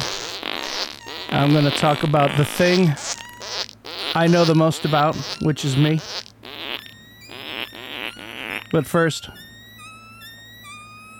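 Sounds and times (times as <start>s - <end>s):
short tune made of fart sounds: 0.0s - 11.1s
speech: 1.3s - 3.0s, 4.2s - 6.1s, 8.7s - 9.4s
thin sustained tone: 6.8s - 11.1s.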